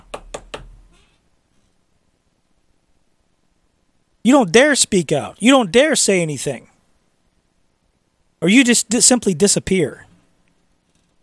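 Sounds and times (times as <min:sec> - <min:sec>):
sharp knocks on a door: 0:00.0 - 0:00.8
speech: 0:04.2 - 0:06.7, 0:08.4 - 0:10.1.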